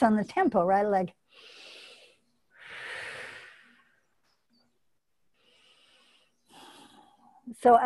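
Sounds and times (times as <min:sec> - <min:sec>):
speech: 0:00.0 - 0:01.6, 0:07.5 - 0:07.8
person breathing during a slow exercise movement: 0:01.3 - 0:04.0, 0:05.3 - 0:07.4.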